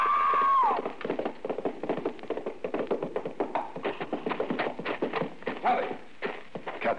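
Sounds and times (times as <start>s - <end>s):
high cry: 0.0s - 0.9s
horse hooves galloping in a race and stumbling over a bar at a corral gate: 0.0s - 6.9s.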